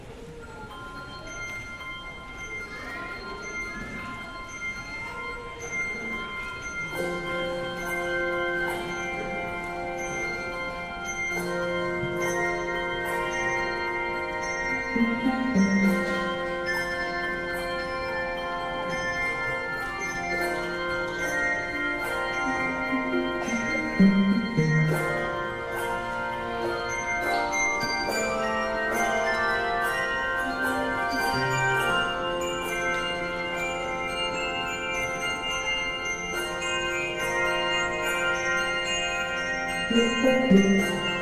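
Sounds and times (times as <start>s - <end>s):
handbells fanfare: 0.0s - 41.2s.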